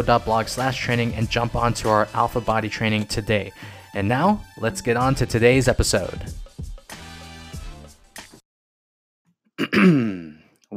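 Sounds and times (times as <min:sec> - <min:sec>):
speech: 0:00.0 - 0:06.4, 0:09.6 - 0:10.7
person clearing throat in rough voiced bursts: 0:09.6 - 0:10.5.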